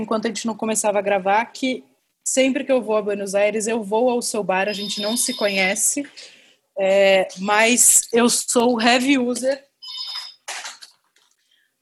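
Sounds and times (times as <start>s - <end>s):
speech: 0.0s - 9.7s
phone ringtone chirping with a bright electronic tone: 4.7s - 5.8s, 9.8s - 10.5s.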